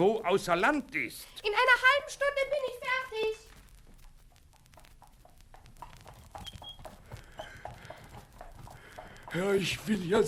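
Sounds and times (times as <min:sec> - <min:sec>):
speech: 0:00.0 - 0:03.4, 0:09.3 - 0:10.2
donkey hooves clip-clopping on a hard surface at a walking pace: 0:01.3 - 0:10.2.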